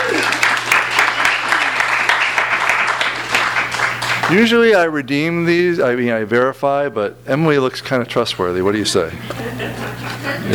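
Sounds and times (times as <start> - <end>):
crowd applauding: 0.0 - 4.8
low steady hum: 0.0 - 10.5
speech: 4.3 - 10.5
laughter: 9.2 - 10.5.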